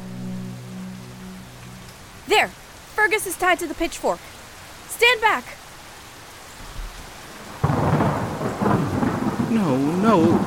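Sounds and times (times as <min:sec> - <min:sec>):
low constant droning hum: 0:00.0 - 0:02.9
pouring rain: 0:00.0 - 0:10.4
speech: 0:02.3 - 0:04.4, 0:05.0 - 0:05.6, 0:09.5 - 0:10.4
loud crack of thunder: 0:07.6 - 0:10.4.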